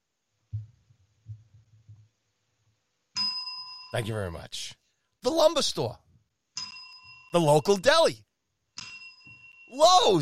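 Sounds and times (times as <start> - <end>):
soft low thumps: 0.4 - 2.1
bright bell ringing: 3.2 - 4.1, 6.6 - 8.1, 8.8 - 10.2
speech: 3.9 - 6.0, 7.3 - 8.3, 9.7 - 10.2.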